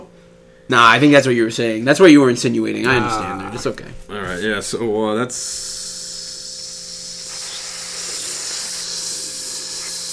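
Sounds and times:
speech: 0:00.7 - 0:05.8
burgers frying on a hot grill: 0:05.5 - 0:10.1.

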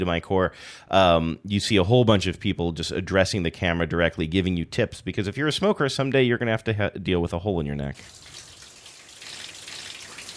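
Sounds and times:
speech: 0:00.0 - 0:08.4
shower water spraying onto a surface: 0:08.0 - 0:10.3.

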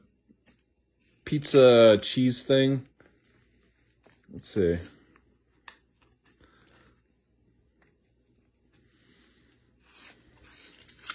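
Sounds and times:
speech: 0:01.3 - 0:02.9, 0:04.4 - 0:05.0
paper ripping: 0:09.8 - 0:11.1.

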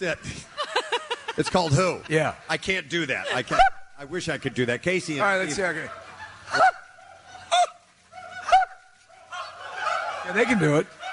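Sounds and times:
speech: 0:00.0 - 0:00.5, 0:01.4 - 0:06.6, 0:10.3 - 0:11.0
laughter: 0:00.0 - 0:03.8, 0:05.2 - 0:07.8
people squawking in imitation of seagulls: 0:06.0 - 0:11.1.

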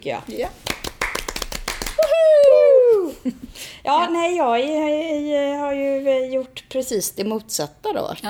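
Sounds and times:
speech: 0:00.0 - 0:00.7, 0:03.2 - 0:08.2
hands clapping: 0:00.6 - 0:02.6.

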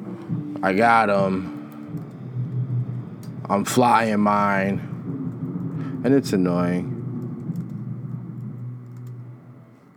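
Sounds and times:
steady low hum: 0:00.0 - 0:09.9
speech: 0:00.6 - 0:01.6, 0:03.5 - 0:04.9, 0:06.0 - 0:06.9
typing on a computer keyboard: 0:07.2 - 0:07.8, 0:08.4 - 0:09.2.

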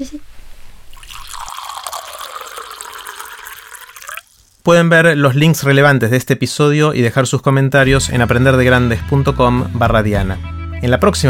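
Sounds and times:
speech: 0:00.0 - 0:00.3, 0:04.7 - 0:11.2
water poured into a glass to drink: 0:00.9 - 0:04.7.

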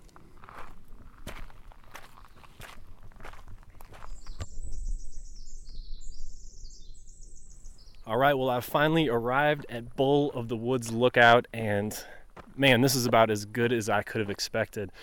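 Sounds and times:
footsteps of a hiker crunching on a remote forest trail: 0:00.0 - 0:04.8, 0:09.3 - 0:15.0
birds chirping: 0:01.8 - 0:15.0
speech: 0:08.1 - 0:15.0.

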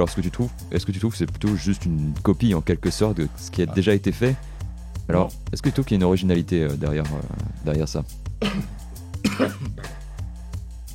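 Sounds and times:
speech: 0:00.0 - 0:04.5, 0:05.1 - 0:08.8, 0:09.4 - 0:09.8
cough and throat clearing from a person with a slight cold: 0:08.4 - 0:10.1.

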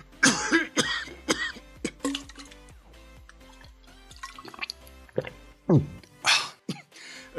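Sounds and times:
person coughing harshly after choking on an arepa: 0:00.2 - 0:02.2
strained breaths and throat sounds: 0:06.2 - 0:07.3.

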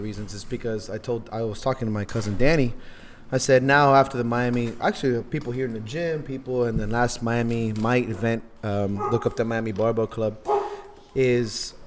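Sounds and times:
speech: 0:00.0 - 0:10.6, 0:11.2 - 0:11.8
dog barking: 0:09.0 - 0:09.4, 0:10.5 - 0:11.0.

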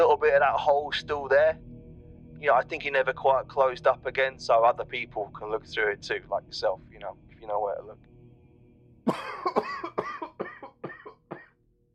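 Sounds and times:
speech: 0:00.1 - 0:01.7, 0:02.4 - 0:08.1, 0:09.0 - 0:09.9
coughing fit: 0:09.1 - 0:11.6.

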